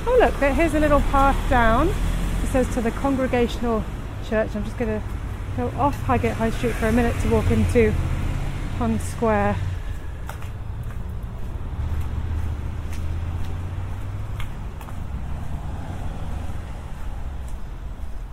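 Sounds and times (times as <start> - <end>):
low rumble of street traffic: 0.0 - 18.3
speech: 0.1 - 8.1, 8.8 - 9.7
light scattered clicks and scuffs: 9.9 - 15.5.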